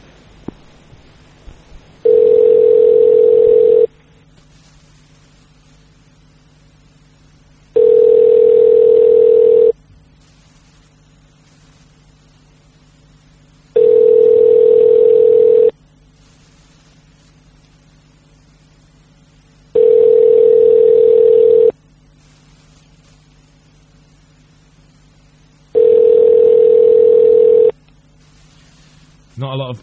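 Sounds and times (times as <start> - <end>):
telephone ringback tone on an outgoing call: 2.0 - 3.9, 7.8 - 9.8, 13.8 - 15.7, 19.8 - 21.8, 25.8 - 27.7.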